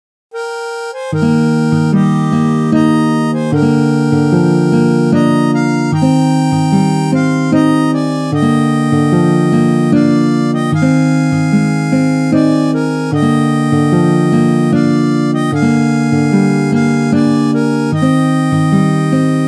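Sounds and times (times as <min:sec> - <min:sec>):
harmonica playing a hymn: 0:00.3 - 0:19.4.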